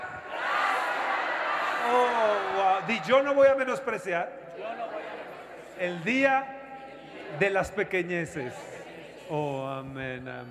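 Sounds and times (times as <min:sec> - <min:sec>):
large audience shouting together: 0:00.0 - 0:03.7, 0:04.5 - 0:07.6
speech: 0:02.8 - 0:04.9, 0:05.8 - 0:06.6, 0:07.3 - 0:08.7, 0:09.3 - 0:10.4.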